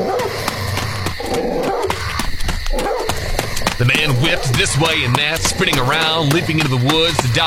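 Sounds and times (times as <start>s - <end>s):
big white dog barking aggressively while chasing a fleeing man: 0.0s - 0.5s, 1.3s - 2.0s, 2.7s - 3.3s
speech: 3.8s - 7.4s.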